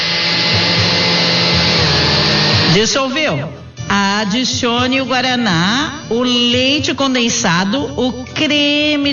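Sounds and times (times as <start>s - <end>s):
blender mixing gelatin with boiling water: 0.0s - 3.0s
speech: 2.8s - 9.1s.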